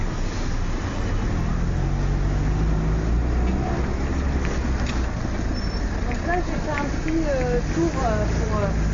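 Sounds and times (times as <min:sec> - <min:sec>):
car driving over a bumpy potholed road heard from inside: 0:00.0 - 0:08.9
speech: 0:07.1 - 0:08.9.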